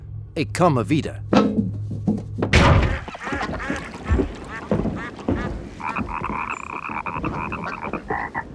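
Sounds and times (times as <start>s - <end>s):
speech: 0.4s - 1.6s
frog croaking at night by a river: 2.8s - 8.5s.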